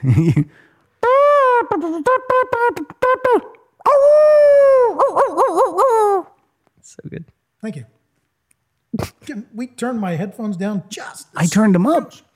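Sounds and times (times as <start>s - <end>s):
speech: 0.0s - 0.6s, 1.6s - 6.1s, 6.9s - 8.0s, 8.9s - 12.3s
person imitating a dog howling in long wavering cries: 1.0s - 6.4s.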